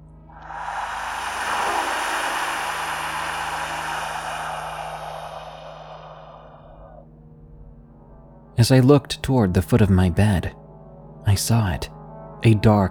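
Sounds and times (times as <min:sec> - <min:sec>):
loud harsh raspy hiss: 0:00.3 - 0:07.0
speech: 0:08.6 - 0:10.6, 0:11.4 - 0:12.8.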